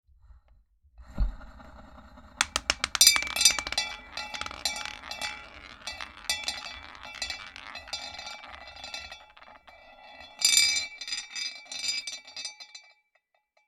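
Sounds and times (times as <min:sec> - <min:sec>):
roulette wheel spinning: 0:02.4 - 0:11.4.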